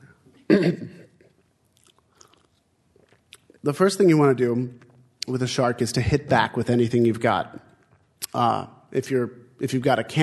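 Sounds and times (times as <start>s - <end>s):
speech: 0.7s - 1.0s, 3.6s - 7.6s, 8.3s - 10.2s
person sipping and gulping a drink: 1.1s - 3.6s.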